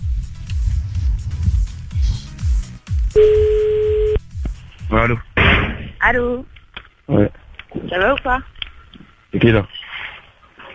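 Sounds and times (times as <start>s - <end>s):
low rhythmic rumbling: 0.0s - 9.4s
telephone ringing tone on an outgoing call: 3.2s - 4.2s
speech: 5.0s - 5.3s, 6.0s - 6.5s, 7.1s - 8.5s, 9.3s - 9.8s.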